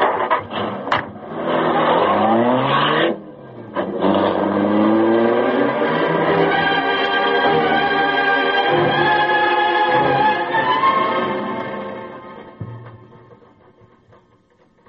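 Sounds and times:
car engine revving and driving off: 0:00.0 - 0:14.4.

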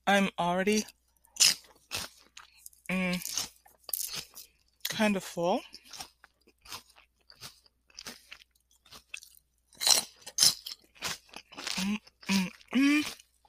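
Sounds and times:
speech: 0:00.1 - 0:01.5, 0:05.0 - 0:05.8, 0:11.8 - 0:13.2
someone chewing crunchy salad: 0:00.7 - 0:05.0, 0:05.6 - 0:13.4
person murmuring: 0:11.8 - 0:13.1.

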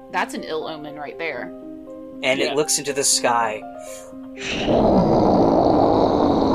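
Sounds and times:
speech: 0:00.1 - 0:05.2
adult black dragon roaring on the roof of an inn: 0:04.4 - 0:06.5.

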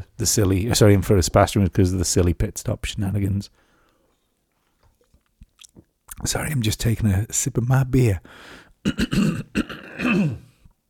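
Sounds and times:
speech: 0:00.2 - 0:03.6, 0:06.2 - 0:10.5
person clearing throat: 0:08.9 - 0:10.6.

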